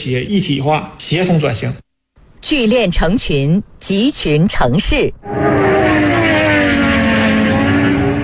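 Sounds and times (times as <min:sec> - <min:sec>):
speech: 0:00.0 - 0:01.8, 0:02.4 - 0:05.6
racing superbike engines revving at full throttle: 0:05.2 - 0:08.2.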